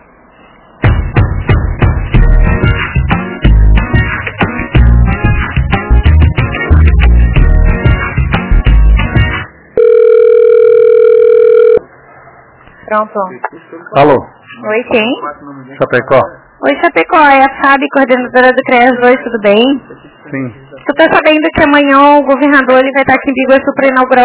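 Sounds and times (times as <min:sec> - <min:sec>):
rhythmic thumping and tapping: 0:00.8 - 0:09.4
telephone line tone during a call transfer: 0:09.8 - 0:11.9
speech: 0:12.9 - 0:24.2.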